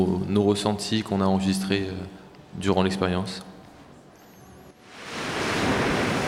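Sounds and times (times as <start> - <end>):
speech: 0.0 - 3.5
surf crashing on a beach: 4.8 - 6.2
gusting wind on a beach: 4.9 - 6.2.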